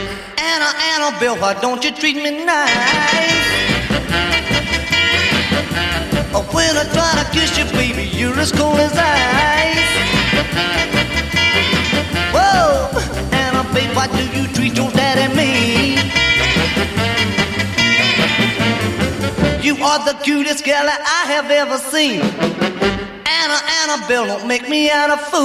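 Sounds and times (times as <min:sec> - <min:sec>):
male singer's melodic vocal lines: 0:00.0 - 0:04.0, 0:06.1 - 0:11.0, 0:12.2 - 0:16.8, 0:19.4 - 0:22.4, 0:23.2 - 0:25.4
rock and roll song with full band: 0:00.0 - 0:25.4
speech: 0:01.0 - 0:03.4, 0:05.8 - 0:11.0, 0:13.8 - 0:16.2, 0:19.6 - 0:25.4.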